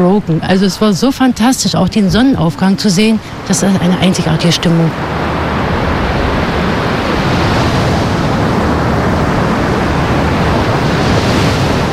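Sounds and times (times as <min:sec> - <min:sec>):
speech: 0:00.0 - 0:05.3
sea waves breaking on a wide fine sand beach at Usedom: 0:00.0 - 0:11.9.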